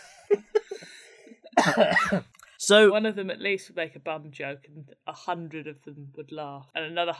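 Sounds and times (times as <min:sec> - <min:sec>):
person coughing: 0:00.0 - 0:02.3
speech: 0:01.6 - 0:07.1.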